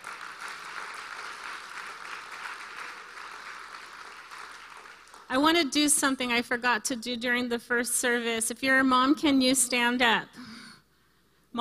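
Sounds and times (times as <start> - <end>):
large crowd applauding: 0.0 - 5.3
speech: 5.3 - 10.6.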